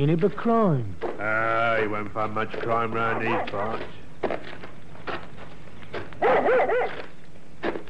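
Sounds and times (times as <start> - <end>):
speech: 0.0 - 4.6
dog barking excitedly: 3.1 - 3.6, 6.2 - 7.1.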